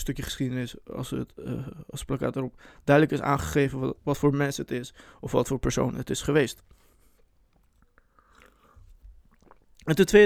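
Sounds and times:
speech: 0:00.0 - 0:06.8, 0:09.8 - 0:10.2
person gulping water: 0:03.4 - 0:03.7, 0:08.2 - 0:09.9
person sipping water: 0:07.8 - 0:09.9.

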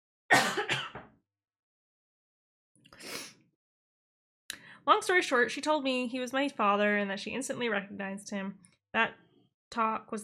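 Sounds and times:
person coughing: 0:00.3 - 0:01.0
speech: 0:04.8 - 0:10.2.

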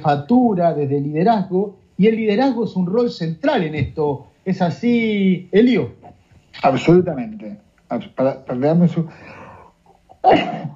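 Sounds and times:
speech: 0:00.0 - 0:09.4, 0:10.2 - 0:10.7
person sneezing from allergy: 0:10.1 - 0:10.7.

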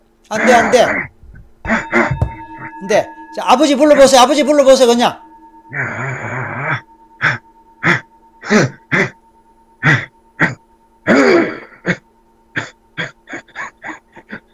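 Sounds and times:
person coughing: 0:00.3 - 0:01.1, 0:01.7 - 0:02.7, 0:07.9 - 0:09.2, 0:09.8 - 0:14.5
speech: 0:00.3 - 0:01.1, 0:02.8 - 0:06.2, 0:08.5 - 0:08.7
throat clearing: 0:01.7 - 0:02.2, 0:09.8 - 0:12.0, 0:12.6 - 0:14.4.

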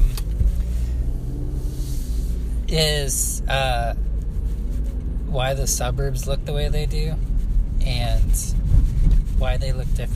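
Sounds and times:
low rumble of car interior: 0:00.0 - 0:10.1
speech: 0:02.7 - 0:04.1, 0:05.3 - 0:08.6, 0:09.4 - 0:10.1.

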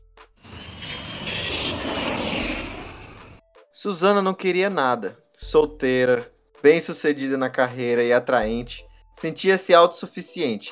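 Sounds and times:
airplane engine roar passing overhead: 0:00.4 - 0:03.4
speech: 0:03.8 - 0:10.7.

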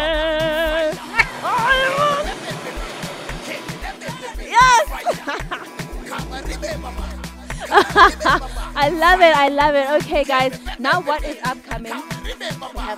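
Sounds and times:
voices calling out: 0:00.6 - 0:08.9
water splashing and sloshing: 0:01.0 - 0:05.4
laughter: 0:01.0 - 0:09.1
speech: 0:08.8 - 0:12.9.

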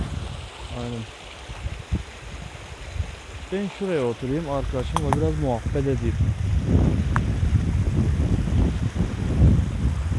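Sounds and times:
wind buffeting microphone outdoors: 0:00.0 - 0:10.1
speech: 0:03.5 - 0:07.1.

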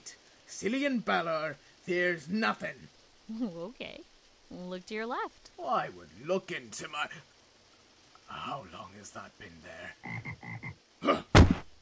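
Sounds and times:
speech: 0:00.6 - 0:07.3, 0:08.3 - 0:11.3
frog croaking: 0:09.8 - 0:10.9.

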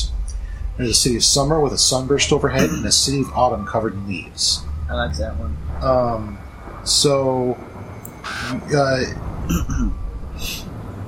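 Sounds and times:
steady outdoor noise: 0:00.0 - 0:11.0
speech: 0:00.8 - 0:10.7
raven perched atop a carved stone cawing: 0:08.2 - 0:08.7.

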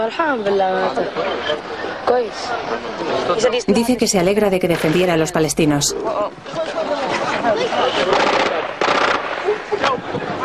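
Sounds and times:
speech: 0:00.0 - 0:08.3
gunfire from an advancing armored tank in Gaza: 0:08.1 - 0:09.5.

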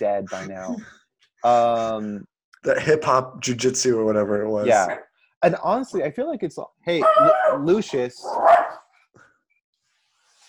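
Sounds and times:
speech: 0:00.0 - 0:08.8
laughter: 0:01.5 - 0:08.2
dog barking: 0:07.0 - 0:08.8.

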